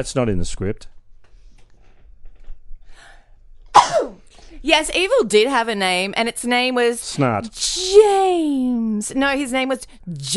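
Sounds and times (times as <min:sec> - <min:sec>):
speech: 0:00.0 - 0:01.0, 0:04.6 - 0:10.3
person sneezing: 0:03.7 - 0:04.3.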